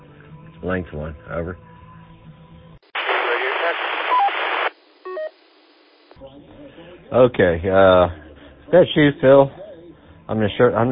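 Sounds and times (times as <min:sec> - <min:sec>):
speech: 0:00.6 - 0:01.7, 0:07.1 - 0:09.6, 0:10.3 - 0:10.9
loud radio static burst: 0:02.8 - 0:06.2
brief electronic tones: 0:05.0 - 0:06.1.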